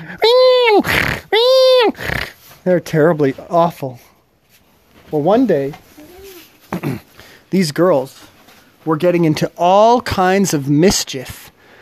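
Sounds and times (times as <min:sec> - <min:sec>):
voice imitating a squealing pig: 0:00.0 - 0:02.4
speech: 0:01.9 - 0:04.1, 0:05.1 - 0:05.8, 0:06.8 - 0:08.2, 0:08.8 - 0:11.4.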